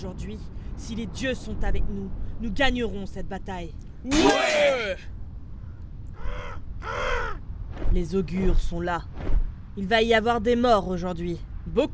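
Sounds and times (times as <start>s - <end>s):
speech: 0.0s - 5.2s, 7.9s - 11.9s
crow cawing: 6.1s - 7.4s.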